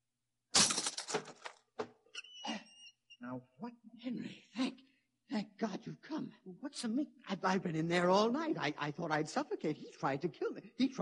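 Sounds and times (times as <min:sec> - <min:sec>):
door lock smashed open: 0:00.5 - 0:01.9
speech: 0:03.3 - 0:04.4, 0:05.6 - 0:11.0.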